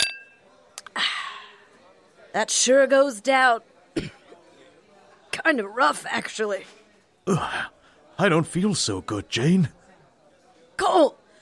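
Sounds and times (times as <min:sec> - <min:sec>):
glasses clinking in a toast: 0:00.0 - 0:00.4
speech: 0:02.3 - 0:04.2, 0:05.5 - 0:09.8, 0:10.8 - 0:11.2.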